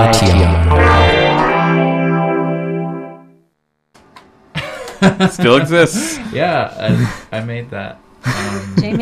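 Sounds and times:
speech: 0:00.0 - 0:00.9, 0:05.0 - 0:09.0
radio station ID jingle tone with tape echo: 0:00.0 - 0:03.3
laughter: 0:04.6 - 0:06.2, 0:08.3 - 0:09.0.

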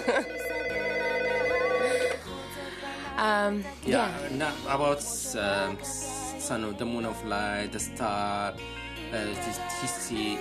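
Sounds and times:
telephone ringing: 0:00.0 - 0:02.2
speech: 0:03.4 - 0:10.3.

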